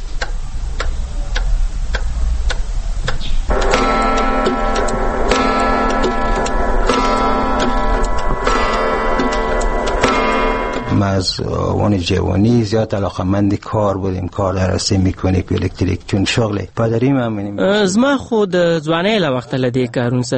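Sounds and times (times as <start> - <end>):
large newly finished clock ticking: 0.2 - 12.1
sustained ringing tone: 3.5 - 12.5
speech: 11.2 - 20.3.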